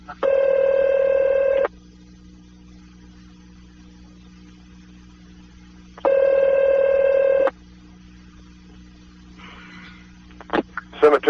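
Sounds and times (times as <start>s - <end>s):
faint low hum: 0.0s - 11.2s
telephone ringtone heard down the line: 0.2s - 1.7s, 6.0s - 7.5s.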